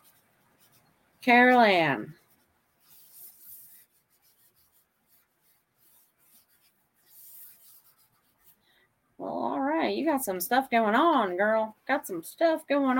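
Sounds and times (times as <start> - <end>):
pencil rubbing on paper: 0.0 - 8.6
speech: 1.2 - 2.2, 9.9 - 12.9.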